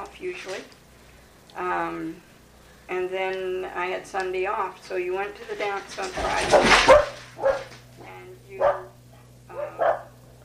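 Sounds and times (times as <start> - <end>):
low steady hum: 0.0 - 10.4
speech: 0.2 - 0.8, 1.5 - 2.3, 2.9 - 7.8
dogs barking: 6.4 - 7.8, 8.5 - 10.3.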